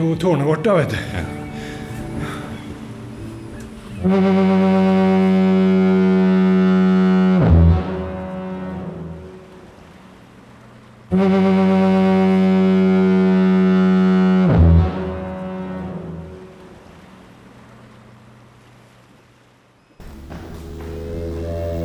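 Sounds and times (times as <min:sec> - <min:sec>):
speech: 0:00.0 - 0:01.4, 0:04.0 - 0:06.2, 0:11.1 - 0:11.6
loud foghorn blasts: 0:02.0 - 0:10.0, 0:11.1 - 0:17.1, 0:20.0 - 0:21.8
low rumble: 0:20.0 - 0:21.8.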